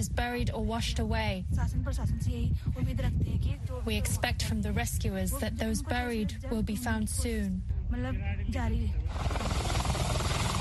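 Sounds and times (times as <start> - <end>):
speech: 0.0 - 9.7
helicopter rotor thumping overhead: 9.1 - 10.5.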